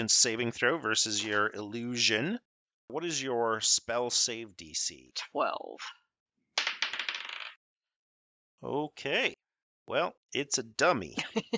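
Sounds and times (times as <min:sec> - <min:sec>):
speech: 0:00.0 - 0:06.0, 0:08.6 - 0:11.5
dice from a bag clattering and tumbling across a hard surface: 0:06.6 - 0:07.6.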